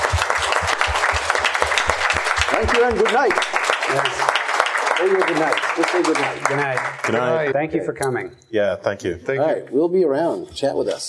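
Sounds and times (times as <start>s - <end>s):
crowd clapping: 0.0s - 7.5s
speech: 2.6s - 4.4s, 5.0s - 11.0s.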